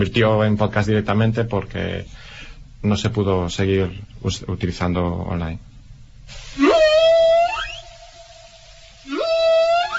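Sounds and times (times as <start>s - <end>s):
speech: 0.0s - 5.7s
whale calls during mating ritual: 6.6s - 9.9s.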